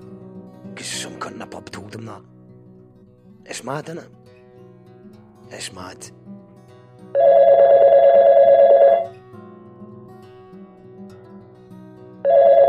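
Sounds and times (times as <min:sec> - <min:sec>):
speech: 0:00.8 - 0:02.3, 0:03.4 - 0:04.2, 0:05.5 - 0:06.2
telephone electronic ring for an incoming caller: 0:07.2 - 0:09.1, 0:12.2 - 0:12.6.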